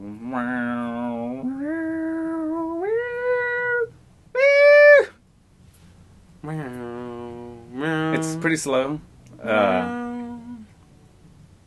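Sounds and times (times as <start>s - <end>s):
voice imitating a slow synthesizer line with buzzy notes: 0.0s - 5.2s, 6.4s - 8.8s, 9.4s - 10.7s
speech: 0.3s - 0.6s, 8.2s - 10.0s.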